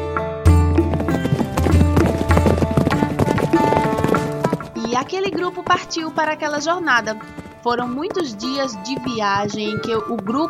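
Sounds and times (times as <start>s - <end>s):
several horse hooves clip-clopping: 0.5s - 10.4s
speech: 5.1s - 10.4s.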